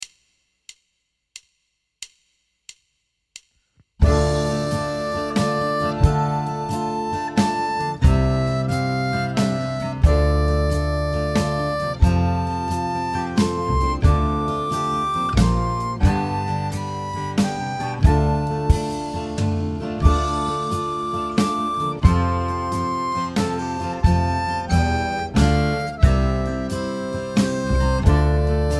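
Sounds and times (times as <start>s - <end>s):
harp: 4.0s - 28.7s.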